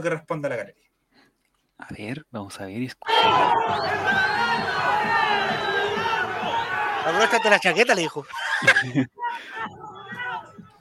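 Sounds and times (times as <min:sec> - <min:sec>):
speech: 0:00.0 - 0:00.9, 0:01.8 - 0:06.3, 0:07.0 - 0:09.8
large stadium crowd shouting insults at referee: 0:03.1 - 0:10.8
laughter: 0:03.3 - 0:10.2.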